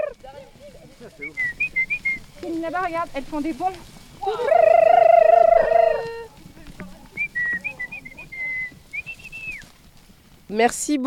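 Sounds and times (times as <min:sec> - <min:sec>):
parrots whistling at a parrot farm: 0:01.2 - 0:02.2, 0:04.2 - 0:06.3, 0:07.1 - 0:09.6
speech: 0:02.4 - 0:04.7, 0:10.5 - 0:11.0.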